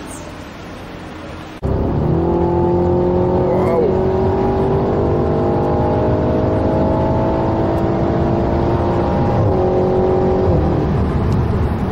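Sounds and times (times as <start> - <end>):
big V8 car engine revving: 1.6 - 11.9.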